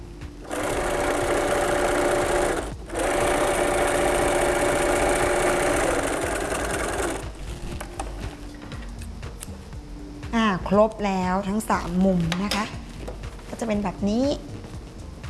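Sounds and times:
sewing machine stitching a side seam with a backstitch: 0:00.4 - 0:07.6
speech: 0:10.7 - 0:12.8, 0:13.6 - 0:14.5.

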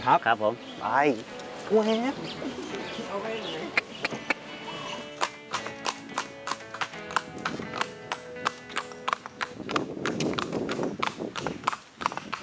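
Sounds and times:
speech: 0:00.0 - 0:03.8
faint street noise in Lampang Thailand: 0:00.0 - 0:12.4
bird calls: 0:00.2 - 0:07.1, 0:07.7 - 0:09.6
horse hooves of a horse-drawn carriage clip-clopping on pavement in Lampang: 0:00.6 - 0:12.4.

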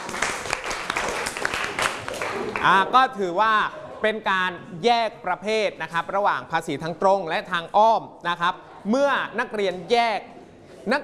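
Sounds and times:
pupils clapping hands in classroom applause for a student: 0:00.0 - 0:02.8
speech: 0:02.6 - 0:11.0.

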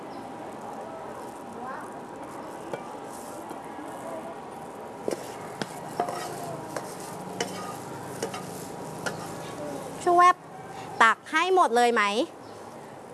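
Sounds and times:
utensil scraping and tapping while scooping noodles from a pan: 0:05.0 - 0:09.6
stir-fried soy sauce noodles sizzling in a pan: 0:05.0 - 0:10.0
speech: 0:11.6 - 0:12.4.

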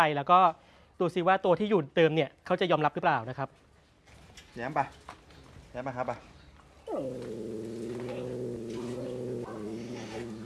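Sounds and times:
speech: 0:00.0 - 0:03.6, 0:04.6 - 0:05.1, 0:05.8 - 0:06.3, 0:06.9 - 0:07.6
cats hissing at each other: 0:06.9 - 0:10.4.

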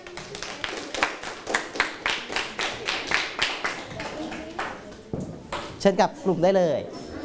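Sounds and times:
students in a classroom clapping for classmates: 0:00.0 - 0:04.8
speech: 0:05.8 - 0:07.0.

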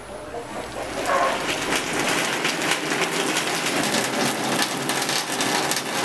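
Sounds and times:
steady rain: 0:00.4 - 0:06.0.

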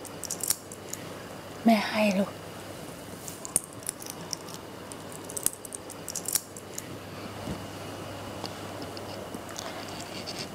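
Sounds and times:
steady low hum: 0:00.0 - 0:10.5
speech: 0:01.6 - 0:02.4
coins clinking and jingling as they are counted by a child: 0:03.4 - 0:06.8.

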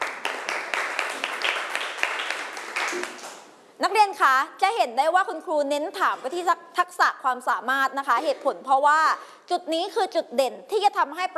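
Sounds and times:
students clapping for a classmate: 0:00.0 - 0:03.5
speech: 0:03.8 - 0:11.3.

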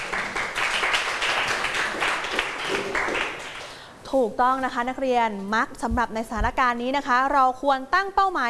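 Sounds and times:
group of students clapping for a classmate: 0:00.0 - 0:03.8
speech: 0:04.1 - 0:08.4.

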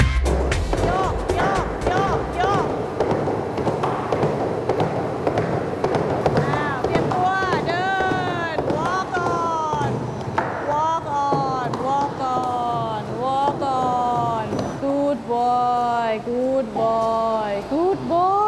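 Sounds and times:
hoofbeats of a horse running fast: 0:00.4 - 0:15.0
woman talking: 0:00.8 - 0:02.8, 0:06.4 - 0:10.0, 0:10.6 - 0:18.4.

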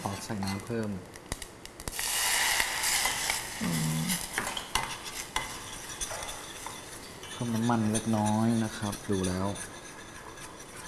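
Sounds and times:
speech: 0:00.2 - 0:01.2, 0:07.4 - 0:09.7
squid and salted-egg stir-fry sauce simmering in a frying pan: 0:01.9 - 0:07.0
utensil stirring and scraping against a frying pan: 0:02.8 - 0:10.8.

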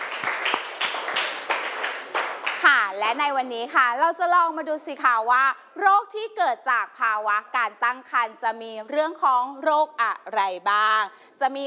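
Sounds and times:
classroom applause for student representatives: 0:00.0 - 0:03.2
speech: 0:03.0 - 0:11.6.

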